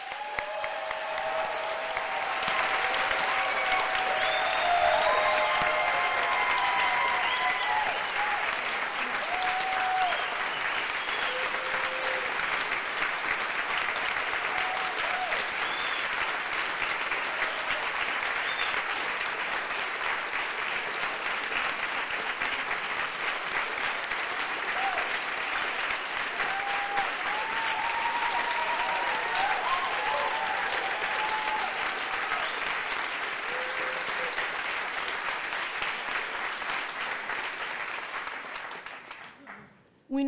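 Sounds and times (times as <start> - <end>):
faint voices and whoops: 0.0 - 12.4, 14.4 - 16.1, 26.4 - 32.7, 33.4 - 34.5
audience applause of many hands clapping: 0.0 - 39.6.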